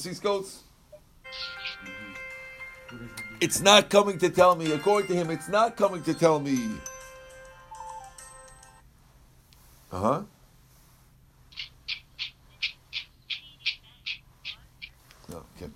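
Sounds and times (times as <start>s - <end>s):
speech: 0.0s - 0.7s, 2.9s - 6.9s, 9.9s - 10.3s
faint hum: 0.0s - 15.7s
phone ringing with a short melodic electronic tune: 1.2s - 8.8s.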